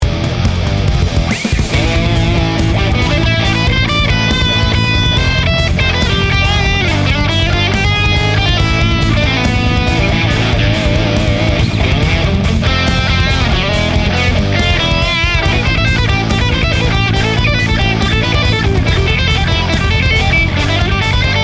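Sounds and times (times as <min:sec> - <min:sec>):
metal guitar solo: 0:00.2 - 0:21.4.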